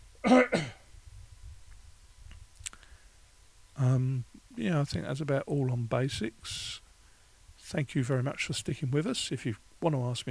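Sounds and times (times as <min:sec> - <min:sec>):
speech: 0:00.2 - 0:00.6, 0:04.8 - 0:06.8, 0:07.7 - 0:10.2
person coughing throatily: 0:00.2 - 0:00.8
faint clicks: 0:01.7 - 0:03.1.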